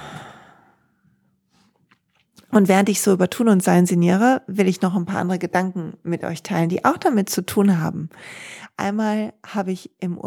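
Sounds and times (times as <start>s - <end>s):
slow deep breath out: 0.0s - 0.8s
speech: 2.5s - 10.2s.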